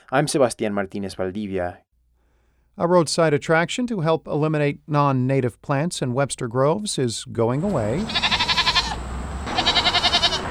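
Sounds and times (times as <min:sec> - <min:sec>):
speech: 0:00.1 - 0:01.9, 0:02.8 - 0:08.3
goats bleating: 0:07.6 - 0:10.4.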